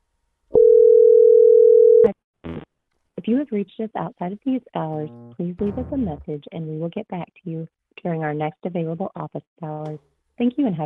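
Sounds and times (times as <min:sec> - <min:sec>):
telephone dial tone while dialing a number: 0:00.6 - 0:02.1
speech: 0:03.3 - 0:10.8.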